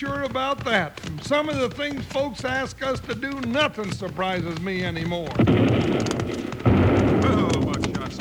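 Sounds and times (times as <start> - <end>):
speech: 0.0 - 6.5
sharp crackling bursts: 1.2 - 8.1
bomb from a balloon exploding with a heavy rumbling boom: 5.4 - 8.1.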